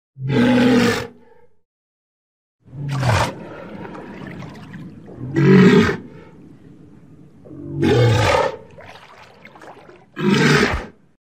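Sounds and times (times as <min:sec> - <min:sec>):
walrus giving deep gravelly roars with low rumbling: 0:00.2 - 0:01.2, 0:05.2 - 0:06.2, 0:07.4 - 0:08.8, 0:10.1 - 0:11.0.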